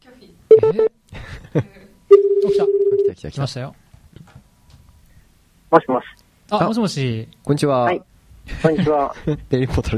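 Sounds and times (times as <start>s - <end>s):
pulsing phone tone: 0.5s - 0.9s, 2.1s - 3.1s
telephone dialing tones: 0.5s - 0.9s, 2.1s - 3.1s
speech: 1.5s - 1.8s, 3.2s - 3.8s, 5.8s - 9.9s.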